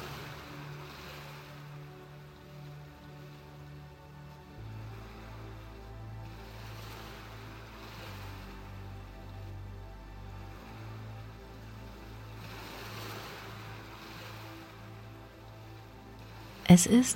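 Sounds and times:
low droning hum: 0:00.0 - 0:17.1
ocean waves washing onto the shore: 0:00.0 - 0:17.1
speech: 0:16.7 - 0:17.1.

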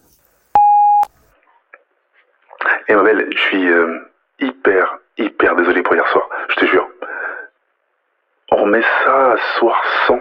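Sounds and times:
mobile phone electronic beep for incoming voice message: 0:00.6 - 0:01.1
speech: 0:02.9 - 0:06.9, 0:08.6 - 0:10.1.

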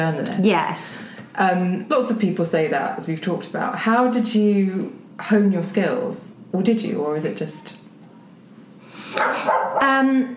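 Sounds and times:
speech: 0:00.0 - 0:07.8, 0:09.2 - 0:10.3
female dog barking: 0:09.1 - 0:10.0
female dog whiny yelp: 0:09.2 - 0:09.8.

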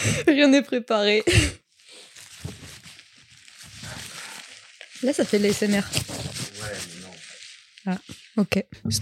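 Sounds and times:
speech: 0:00.2 - 0:01.6, 0:05.0 - 0:06.2, 0:07.8 - 0:09.0
tissue rustling and crinkling while being handled to blow a nose: 0:01.6 - 0:08.6.

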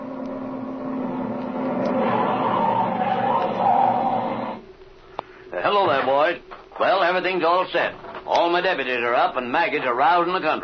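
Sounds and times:
car engine roaring: 0:00.0 - 0:04.6
tires skidding: 0:00.5 - 0:04.6
speech: 0:05.7 - 0:10.6.

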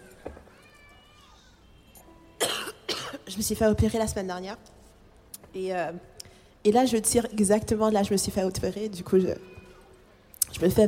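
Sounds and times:
person coughing: 0:02.4 - 0:03.3
speech: 0:03.4 - 0:04.8, 0:05.5 - 0:09.5, 0:10.6 - 0:10.8.

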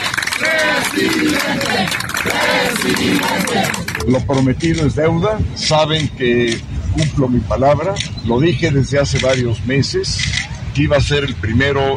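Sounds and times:
crowd of supporters shouting cheers and chants: 0:00.0 - 0:04.1
speech: 0:01.0 - 0:11.9.

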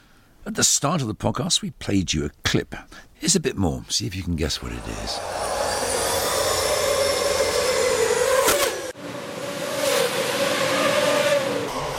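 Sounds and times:
speech: 0:00.4 - 0:05.8
racing drones buzzing past: 0:04.8 - 0:11.9.

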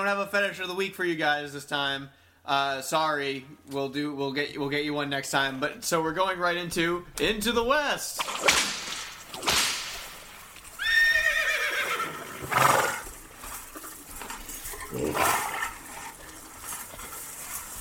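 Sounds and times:
speech: 0:00.0 - 0:08.8
sharp whip-like cracks: 0:08.2 - 0:10.6
horse whinnying: 0:10.7 - 0:13.3, 0:14.7 - 0:16.3.

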